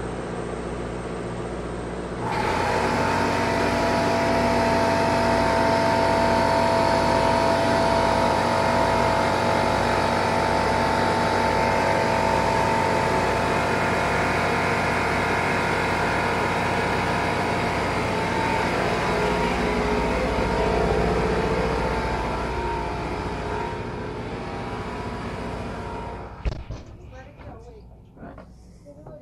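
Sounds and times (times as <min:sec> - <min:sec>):
heavy boat engine room machinery running: 0:00.0 - 0:29.2
whining tonal hum of boat engine machinery: 0:00.0 - 0:29.2.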